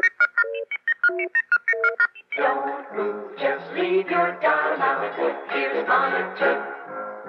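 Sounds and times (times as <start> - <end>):
radio network's electronic beacon tone of short synthetic beeps: 0.0 - 2.4
speech: 4.1 - 6.7.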